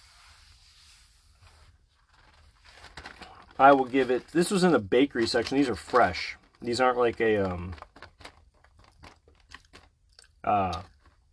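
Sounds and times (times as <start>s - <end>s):
speech: 3.6s - 7.9s, 10.5s - 10.9s
wet open-mouthed chewing of a fresh filled donut: 8.9s - 11.3s.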